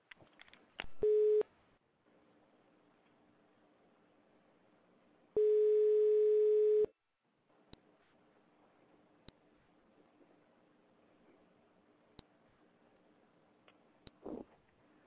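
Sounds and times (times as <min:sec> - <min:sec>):
telephone busy signal beeping after call disconnected: 0:01.0 - 0:01.4, 0:05.4 - 0:06.9.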